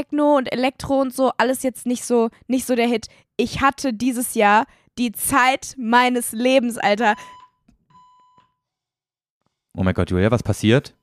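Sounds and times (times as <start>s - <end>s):
speech: 0.0s - 7.4s, 9.8s - 11.0s
steady electronic alarm tone, possibly a fire alarm: 7.1s - 8.4s.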